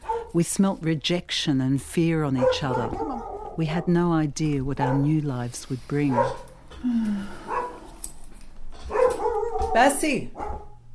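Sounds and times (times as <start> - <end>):
dog barking: 0.0 - 0.4, 2.3 - 4.0, 4.8 - 5.2, 6.1 - 6.5, 7.5 - 7.9, 8.9 - 10.8
speech: 0.3 - 7.4, 9.8 - 10.4
dog whining: 2.5 - 3.6, 7.4 - 8.0, 8.8 - 9.8.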